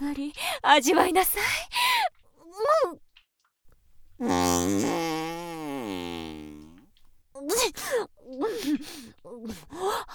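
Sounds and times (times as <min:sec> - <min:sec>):
speech: 0:00.0 - 0:01.8, 0:04.2 - 0:05.1, 0:07.7 - 0:10.1
long buzzy fart: 0:04.2 - 0:06.9.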